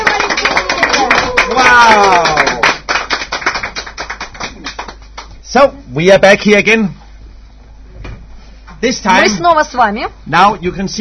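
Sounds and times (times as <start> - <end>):
people cheering: 0.0 - 3.7
applause from a small group: 0.0 - 5.4
speech: 5.5 - 7.0, 8.8 - 11.0.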